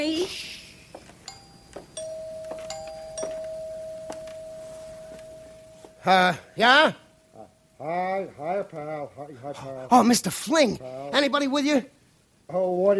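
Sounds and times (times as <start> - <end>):
doorbell ringing indoors: 1.2 - 6.5
loud chime-like bursts: 1.3 - 7.3
steady electronic tone: 1.4 - 7.4
speech: 6.0 - 7.0, 7.8 - 12.9.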